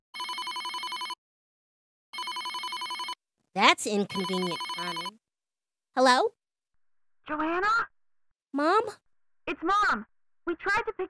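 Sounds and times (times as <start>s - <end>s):
cell phone ringing with a rapid trilling pulse: 0.2s - 1.2s, 2.1s - 3.2s, 3.9s - 5.2s
speech: 3.6s - 5.2s, 6.0s - 6.4s, 7.3s - 7.9s, 8.5s - 11.0s.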